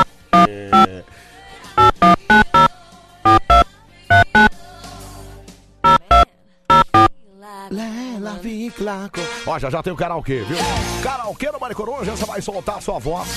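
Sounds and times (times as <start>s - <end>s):
telephone ringing while an outgoing call is placed: 0.0s - 0.9s, 1.8s - 2.7s, 3.3s - 4.5s, 5.9s - 7.1s
speech: 8.8s - 13.3s.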